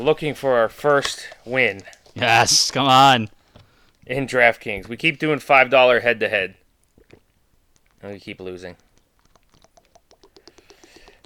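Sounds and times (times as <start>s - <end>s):
speech: 0.0s - 3.4s, 4.1s - 6.6s, 8.0s - 8.8s
drink being poured: 8.8s - 11.2s.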